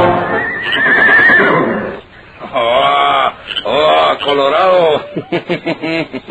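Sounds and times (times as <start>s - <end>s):
horse neighing: 0.2s - 4.4s
people talking and laughing: 2.4s - 6.2s.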